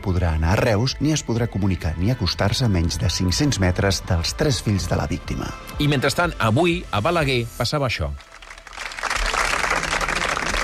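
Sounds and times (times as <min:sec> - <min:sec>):
speech: 0:00.1 - 0:08.3
applause closing a protest gathering of about fifty people outside a public school: 0:08.1 - 0:10.6.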